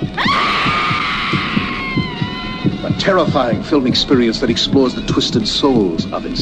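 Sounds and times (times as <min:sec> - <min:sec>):
steady regular low thumping: 0:00.0 - 0:06.4
woman's shrill scream: 0:00.1 - 0:02.9
speech: 0:03.1 - 0:06.4.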